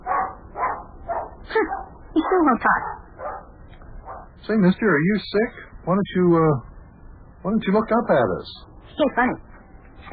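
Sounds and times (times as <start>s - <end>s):
dog barking: 0.0s - 4.3s
speech: 1.6s - 2.9s, 4.5s - 6.7s, 7.4s - 10.1s.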